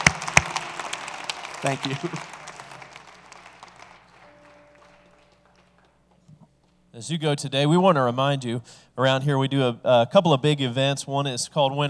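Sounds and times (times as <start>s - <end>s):
audience clapping: 0.0s - 6.3s
speech: 1.6s - 2.4s, 7.0s - 11.8s.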